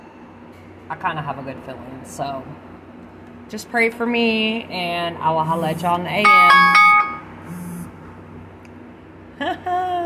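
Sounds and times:
low hum: 0.0s - 10.0s
speech: 0.9s - 2.8s, 3.5s - 6.8s
medication reminder alarm beeping: 5.5s - 7.9s.

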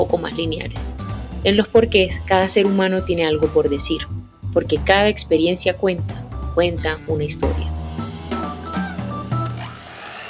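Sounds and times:
speech: 0.0s - 7.8s
electric kitchen mixer running: 8.4s - 10.2s.

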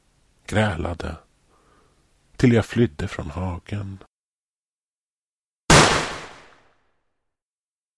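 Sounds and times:
speech: 0.5s - 1.2s, 2.4s - 4.1s
rifle shot with echo: 5.7s - 6.8s.

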